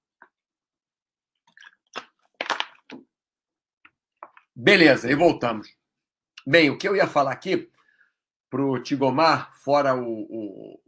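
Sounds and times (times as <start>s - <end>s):
person sipping and swallowing water: 1.4s - 3.0s
speech: 4.6s - 5.8s, 6.4s - 7.7s, 8.5s - 10.8s.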